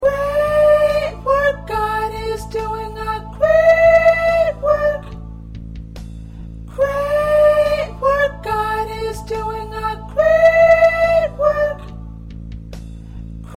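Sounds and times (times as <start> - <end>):
second soprano singing: 0.0 - 5.3, 6.7 - 12.1.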